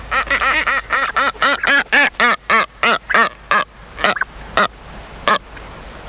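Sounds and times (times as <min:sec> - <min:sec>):
Brown booby nasal honk calls: 0:00.0 - 0:05.4.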